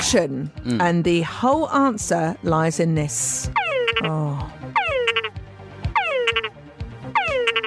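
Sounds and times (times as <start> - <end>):
speech: 0.1 - 4.8
male túngara frog calls: 3.5 - 4.2, 4.7 - 5.4, 5.9 - 6.6, 7.1 - 7.6.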